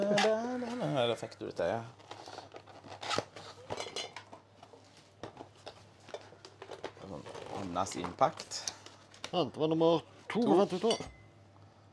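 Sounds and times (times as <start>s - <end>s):
speech: 1.0s - 2.1s, 7.7s - 8.7s, 9.3s - 11.2s
packaging being pulled open: 2.0s - 3.6s
tape on a box being cut: 2.8s - 3.6s.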